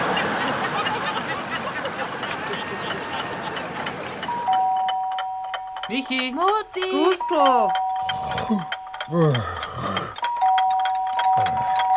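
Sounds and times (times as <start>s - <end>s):
laughter: 0.0s - 4.3s
electric doorbell ringing: 4.3s - 9.1s, 10.2s - 11.9s
speech: 5.9s - 7.8s, 8.5s - 9.6s.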